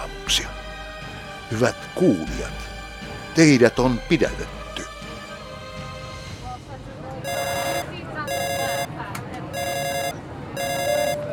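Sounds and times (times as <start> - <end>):
speech: 0.3 - 0.6, 1.5 - 2.7, 3.4 - 4.6
telephone ringing in electronic bursts: 7.3 - 9.0, 9.6 - 11.3.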